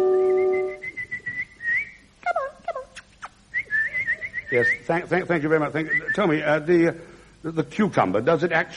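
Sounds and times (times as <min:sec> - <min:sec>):
woman whistling at cucumbers: 0:00.2 - 0:02.1, 0:03.5 - 0:04.8
speech: 0:04.9 - 0:08.7.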